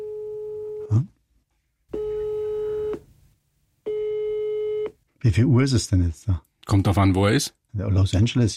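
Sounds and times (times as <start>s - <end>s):
telephone ringback or busy tone over a mobile phone line calling the USA: 0.0s - 0.9s, 1.9s - 3.0s, 3.9s - 5.0s
speech: 0.9s - 1.1s, 5.2s - 8.5s.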